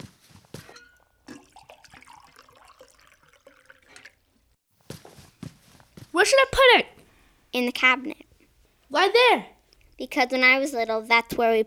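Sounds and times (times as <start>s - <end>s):
water pouring into a bowl for marigolds on an ofrenda: 1.2s - 4.2s
speech: 6.2s - 6.9s, 7.6s - 8.3s, 8.9s - 11.6s.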